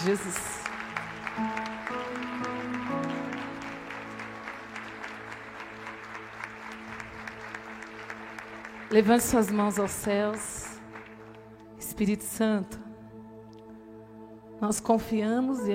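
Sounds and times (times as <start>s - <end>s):
speech: 0.0s - 0.6s, 1.4s - 1.7s, 8.9s - 10.6s, 12.0s - 12.8s, 14.6s - 15.7s
audience applauding in honour of a person: 0.0s - 11.5s
sustained keyboard-like chords: 0.0s - 15.7s.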